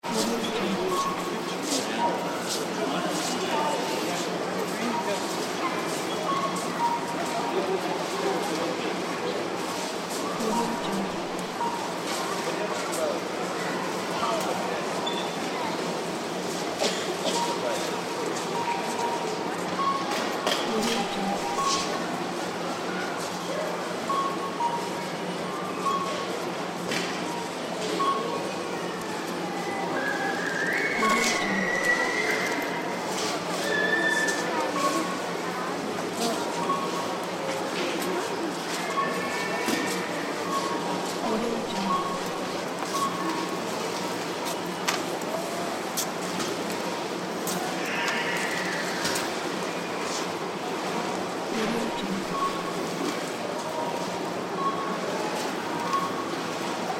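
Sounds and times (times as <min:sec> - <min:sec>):
supermarket ambience: 0:00.0 - 0:56.9.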